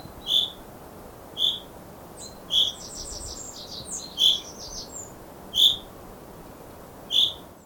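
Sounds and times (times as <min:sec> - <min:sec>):
common chaffinch Fringilla coelebs calling: 0:00.2 - 0:00.6, 0:01.4 - 0:05.0, 0:05.6 - 0:05.8, 0:07.1 - 0:07.4.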